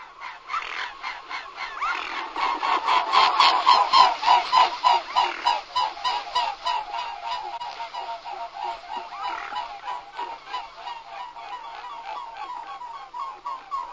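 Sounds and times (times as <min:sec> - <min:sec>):
mute swan honking: 0:00.0 - 0:13.9.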